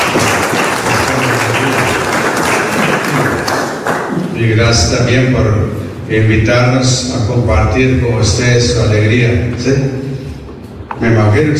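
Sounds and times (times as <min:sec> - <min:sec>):
audience applause: 0:00.0 - 0:04.4
speech: 0:04.4 - 0:10.0, 0:11.0 - 0:11.5.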